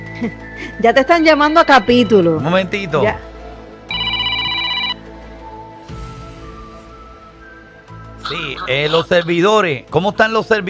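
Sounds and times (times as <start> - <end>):
speech: 0.2 - 3.3, 8.3 - 10.6
electronic telephone ring tone during an outgoing call: 1.5 - 2.4, 3.9 - 5.2.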